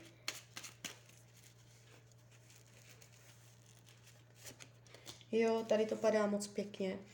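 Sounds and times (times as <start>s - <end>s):
steady low electrical hum: 0.0s - 7.1s
cards snapping and flicking as laid out in a card reading: 0.2s - 1.2s
speech: 5.3s - 7.1s.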